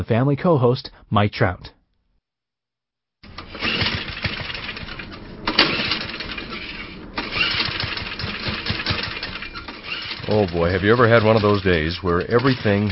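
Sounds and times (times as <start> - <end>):
speech: 0.0 - 1.8, 10.3 - 12.9
small lawnmower engine being pull-started: 3.2 - 12.9.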